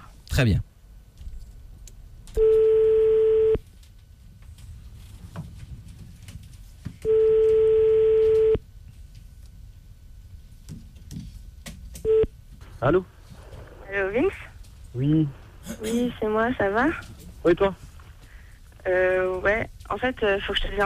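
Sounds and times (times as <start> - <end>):
speech: 0.4 - 0.7, 12.8 - 13.2, 15.0 - 17.8, 18.8 - 20.8
telephone ringback tone while a call is being placed: 2.4 - 3.6, 7.0 - 8.6.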